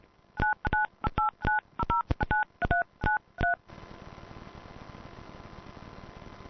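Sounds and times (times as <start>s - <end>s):
steady hiss and low hum on the phone line: 0.2s - 6.4s
DTMF touch-tone keypad beeps with echo as a PIN is entered on a phone call: 0.4s - 3.6s.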